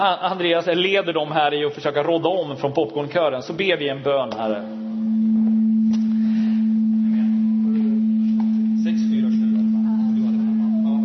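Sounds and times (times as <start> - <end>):
speech: 0.0 - 4.8
low electronic tone played during a church service to wake listeners: 3.8 - 11.0
faint voices murmuring: 6.6 - 11.0.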